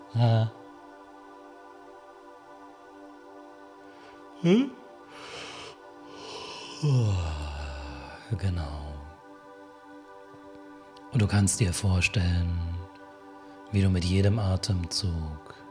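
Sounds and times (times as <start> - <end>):
soft steady musical drone: 0.0 - 15.6
speech: 0.1 - 0.6, 4.4 - 5.4, 6.8 - 7.4, 8.3 - 8.9, 11.1 - 12.8, 13.7 - 15.6
person giving deliberate open-mouthed yawns: 4.4 - 8.3.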